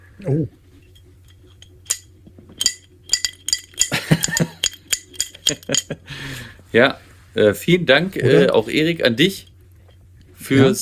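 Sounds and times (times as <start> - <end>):
speech: 0.2 - 0.6, 6.7 - 9.5, 10.5 - 10.8
glasses clinking in a toast: 0.9 - 6.0.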